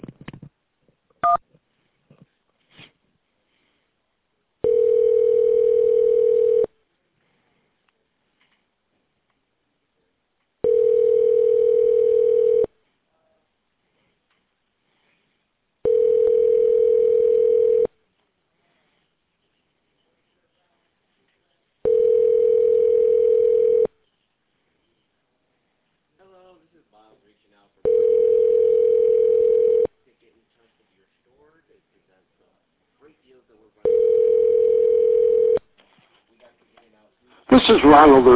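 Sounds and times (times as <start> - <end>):
phone line ringing: 4.6 - 6.7, 10.6 - 12.7, 15.8 - 17.9, 21.9 - 23.9, 27.9 - 29.9, 33.8 - 35.6
speech: 37.7 - 38.3.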